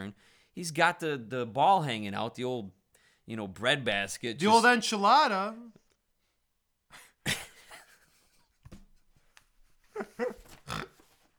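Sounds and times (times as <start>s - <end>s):
speech: 0.0s - 5.8s
faint breathy noises: 0.2s - 0.6s, 2.9s - 3.3s
person snorting: 10.0s - 11.2s.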